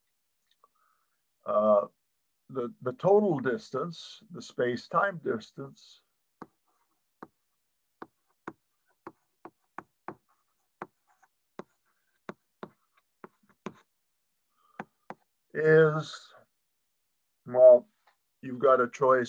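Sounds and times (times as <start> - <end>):
speech: 1.5 - 6.0, 15.6 - 16.4, 17.5 - 19.2
writing on a board during a physics lecture: 6.4 - 13.9, 14.8 - 15.3.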